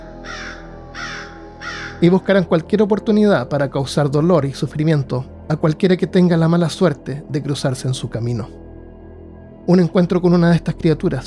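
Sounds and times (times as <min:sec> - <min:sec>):
crow cawing: 0:00.0 - 0:02.0
speech: 0:02.0 - 0:08.6, 0:09.7 - 0:11.2.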